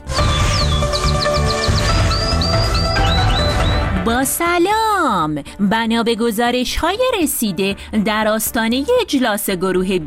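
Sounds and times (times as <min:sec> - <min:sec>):
canary chirping and trilling: 0:00.0 - 0:04.0
speech: 0:04.0 - 0:10.0.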